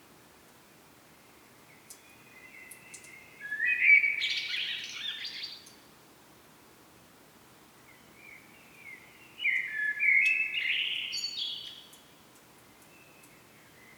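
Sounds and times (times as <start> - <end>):
common blackbird Turdus merula singing: 1.9 - 5.7, 8.3 - 12.0.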